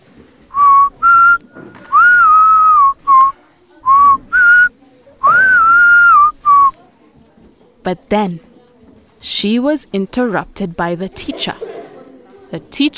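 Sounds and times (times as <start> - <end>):
person whistling a loud lively tune: 0.5 - 6.7
speech: 7.9 - 8.5, 9.2 - 11.7, 12.5 - 12.9
laughter: 11.1 - 12.5.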